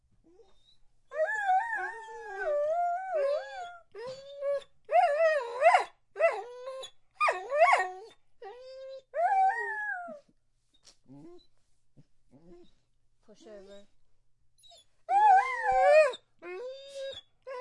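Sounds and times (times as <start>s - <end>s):
dog whining and begging: 0.3s - 10.2s, 14.6s - 17.5s.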